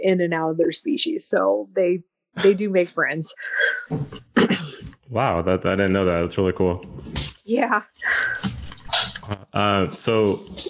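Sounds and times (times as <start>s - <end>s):
speech: 0.0s - 8.6s, 9.5s - 10.6s
dog wet sniffing: 8.1s - 9.3s
dog sneezing: 8.4s - 9.3s.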